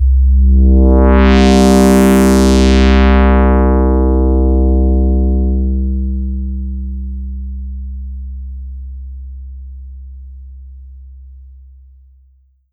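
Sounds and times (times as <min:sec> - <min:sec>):
Yamaha TX81Z analog synth note C2: 0:00.2 - 0:07.2.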